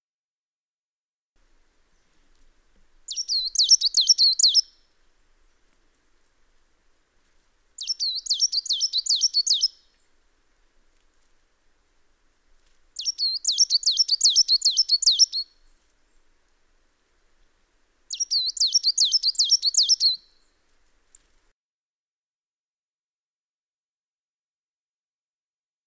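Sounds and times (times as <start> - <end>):
coal tit calling: 3.1 - 4.7, 7.8 - 10.0, 13.0 - 15.5, 18.1 - 20.3.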